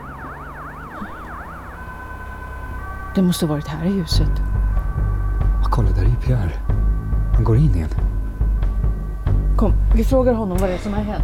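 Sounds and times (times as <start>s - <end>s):
ambulance siren wailing in a fast up-and-down yelp: 0.0s - 9.0s
traffic rumble: 0.0s - 11.2s
speech: 3.2s - 4.5s, 5.8s - 6.7s, 7.4s - 8.0s, 9.6s - 11.2s.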